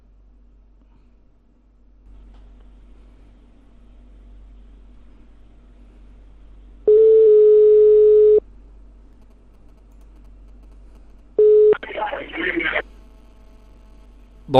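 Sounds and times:
telephone dial tone on a handset: 0:06.9 - 0:08.4.

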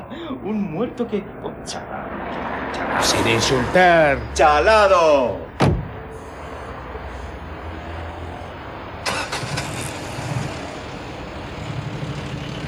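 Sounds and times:
speech: 0:00.2 - 0:05.5
steady car engine drone: 0:00.7 - 0:12.6
car engine being started in anger: 0:02.2 - 0:12.6
sharp thump: 0:05.6 - 0:06.1.

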